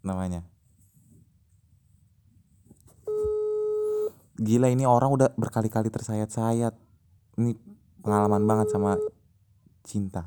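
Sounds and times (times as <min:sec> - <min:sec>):
faint noise: 0:00.0 - 0:10.2
speech: 0:00.1 - 0:00.6, 0:04.4 - 0:06.8, 0:07.4 - 0:09.1, 0:09.8 - 0:10.2
electronic telephone ringing tone of an outgoing call: 0:03.1 - 0:04.1, 0:08.1 - 0:09.1.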